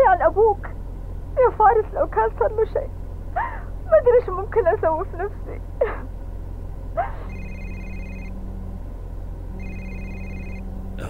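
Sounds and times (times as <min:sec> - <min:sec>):
constant low hum: 0:00.0 - 0:11.0
speech: 0:01.4 - 0:06.2
telephone ringing with an incoming call: 0:07.3 - 0:08.4, 0:09.6 - 0:10.7.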